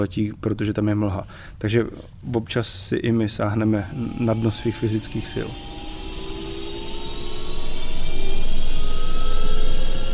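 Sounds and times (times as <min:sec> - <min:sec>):
speech: 0:00.0 - 0:05.7
helicopter engine roaring and whining during takeoff: 0:03.9 - 0:10.1.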